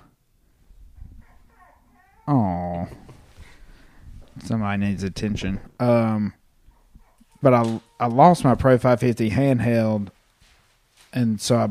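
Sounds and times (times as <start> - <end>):
dog barking and yelping faintly: 1.0 - 2.3, 6.7 - 7.5
speech: 2.3 - 3.0, 4.4 - 6.4, 7.4 - 10.2, 11.1 - 11.7.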